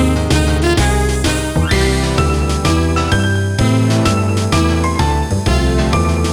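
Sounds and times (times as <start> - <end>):
solitaire puzzle game title music: 0.1 - 6.3.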